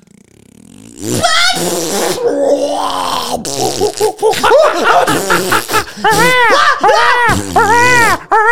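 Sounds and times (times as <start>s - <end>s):
person vocally imitating a long drawn-out fart: 0.0s - 8.3s
snickering laughter: 3.6s - 8.5s.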